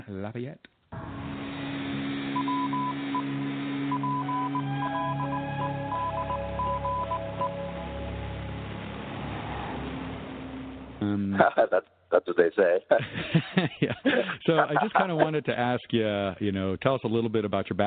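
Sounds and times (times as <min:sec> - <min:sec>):
speech: 0:00.1 - 0:00.7, 0:11.0 - 0:17.8
steady low hum: 0:00.9 - 0:11.3
faint droning tones: 0:01.0 - 0:11.1
short electronic beeps in an irregular dot-and-dash pattern: 0:02.4 - 0:07.8
laughter: 0:11.0 - 0:11.8, 0:12.9 - 0:15.6.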